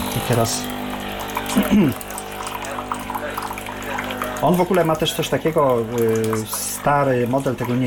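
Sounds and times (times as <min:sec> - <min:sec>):
machine humming during maintenance: 0:00.0 - 0:07.8
water gushing and splashing through a machine into a container: 0:00.0 - 0:07.8
speech: 0:00.2 - 0:00.8, 0:01.5 - 0:02.1, 0:04.4 - 0:07.8.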